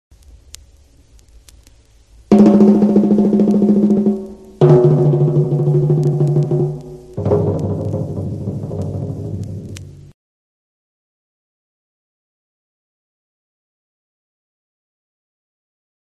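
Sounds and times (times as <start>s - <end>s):
high, medium and low tom drums: 2.3s - 10.1s.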